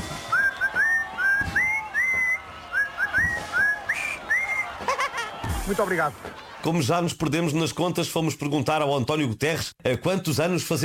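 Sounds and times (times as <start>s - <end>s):
person whistling a birthday tune solo: 0.3s - 4.8s
laughter: 2.7s - 6.9s
speech: 5.7s - 10.8s.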